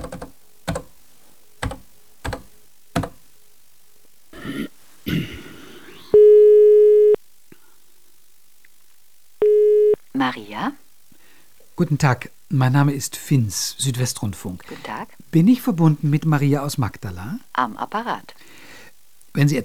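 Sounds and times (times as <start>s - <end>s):
sharp clicks: 0.0s - 0.9s, 1.6s - 3.2s
telephone line buzzing tone while a call is placed: 6.1s - 7.2s, 9.4s - 10.0s
speech: 10.2s - 10.8s, 11.8s - 18.4s, 19.4s - 19.6s.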